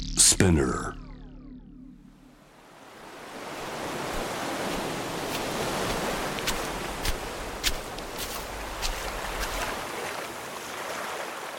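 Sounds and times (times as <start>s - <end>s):
speech: 0.2s - 1.0s
waves washing onto a beach in Israel: 2.8s - 11.5s.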